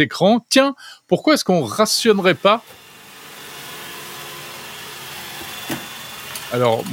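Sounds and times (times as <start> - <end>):
speech: 0.0 - 2.8, 6.5 - 6.9
robot vacuum cleaner whirring: 1.9 - 6.9.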